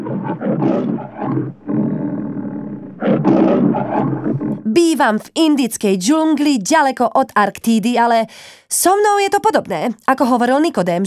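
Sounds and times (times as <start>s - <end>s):
tiger roaring and growling: 0.0s - 4.7s
speech: 0.3s - 1.6s, 3.2s - 11.0s.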